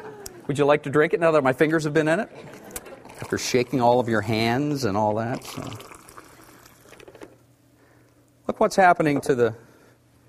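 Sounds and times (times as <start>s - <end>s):
low hum: 0.0s - 10.2s
speech: 0.5s - 5.9s, 8.5s - 9.6s
water poured into a cup with a tea bag: 2.5s - 7.3s.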